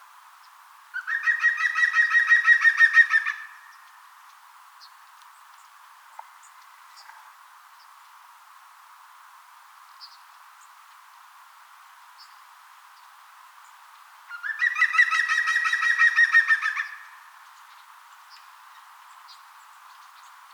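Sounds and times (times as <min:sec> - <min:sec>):
green woodpecker song: 0:00.4 - 0:08.0, 0:12.2 - 0:20.5.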